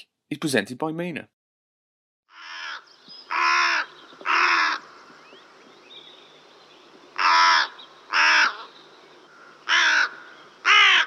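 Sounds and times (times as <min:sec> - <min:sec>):
speech: 0:00.0 - 0:01.4
carrion crow cawing: 0:02.3 - 0:05.3, 0:07.1 - 0:11.0.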